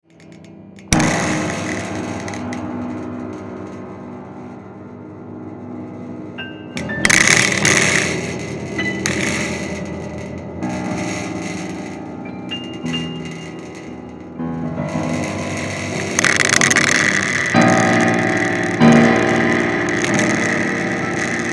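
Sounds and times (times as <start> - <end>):
prepared piano: 0.0 - 21.5.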